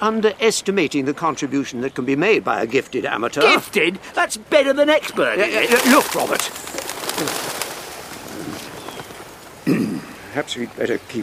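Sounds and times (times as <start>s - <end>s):
speech: 0.0s - 7.4s, 10.4s - 11.2s
steady hiss: 0.0s - 11.2s
bird cooing outdoors: 5.4s - 10.3s.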